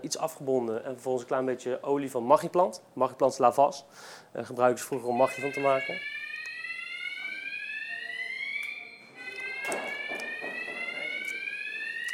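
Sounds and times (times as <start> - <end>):
speech: 0.0 - 6.2
fire alarm blaring in restaurant kitchen: 5.0 - 12.1.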